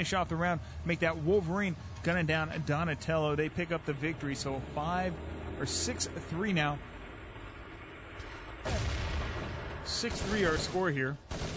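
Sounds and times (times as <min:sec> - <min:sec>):
speech: 0:00.0 - 0:07.0, 0:08.6 - 0:08.9, 0:09.9 - 0:11.3
low rumble of grenade explosion: 0:00.0 - 0:11.4
grenade explosion in a shooter video game: 0:08.3 - 0:11.5.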